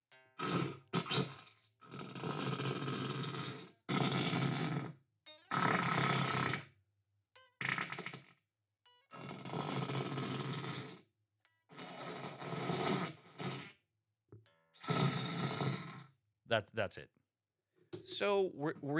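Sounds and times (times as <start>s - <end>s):
wet fart noises from a novelty gadget: 0.4s - 6.8s, 7.6s - 8.4s, 9.2s - 11.0s, 11.7s - 13.8s, 14.8s - 16.1s
speech: 16.5s - 17.2s, 18.1s - 18.9s.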